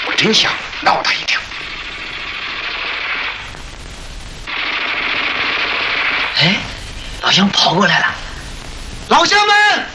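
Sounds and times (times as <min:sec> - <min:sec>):
speech: 0:00.2 - 0:01.4, 0:07.3 - 0:08.2
Japanese crooked-handle light machine gun firing in wartime combat: 0:00.2 - 0:03.5, 0:04.5 - 0:06.6.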